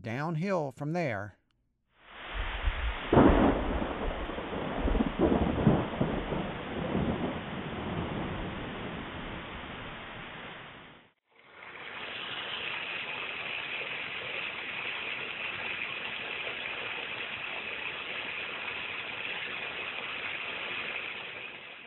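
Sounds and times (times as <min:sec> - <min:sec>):
speech: 0:00.0 - 0:01.4
steady rain hissing in a thunderstorm: 0:02.0 - 0:21.8
sharp crack of thunder: 0:02.2 - 0:10.9
water rushing through a storm drain pipe: 0:11.3 - 0:21.8.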